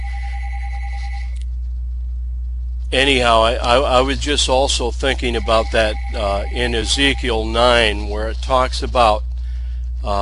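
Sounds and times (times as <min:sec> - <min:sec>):
telephone ringing with a warbling two-tone electronic pattern: 0:00.0 - 0:01.4, 0:05.2 - 0:07.9
loud constant low hum: 0:00.0 - 0:10.1
speech: 0:02.9 - 0:09.3.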